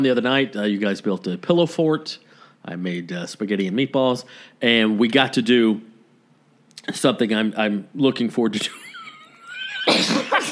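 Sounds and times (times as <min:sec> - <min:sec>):
speech: 0:00.0 - 0:05.9, 0:06.9 - 0:08.8
person sneezing: 0:09.8 - 0:10.4.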